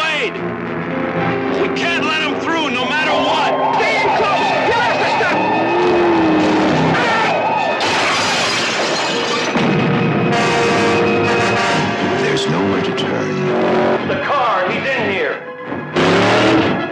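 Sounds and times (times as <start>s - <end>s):
speech: 0.2s - 0.7s
car engine revving and whining: 0.4s - 8.4s, 9.6s - 14.3s, 15.7s - 16.9s
crashing and shattering: 7.8s - 9.8s.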